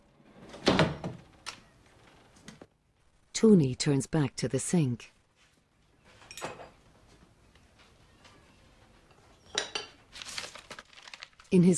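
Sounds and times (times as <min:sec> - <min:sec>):
sliding door being slid shut: 0:00.0 - 0:01.5
speech: 0:03.4 - 0:05.2, 0:11.5 - 0:11.7.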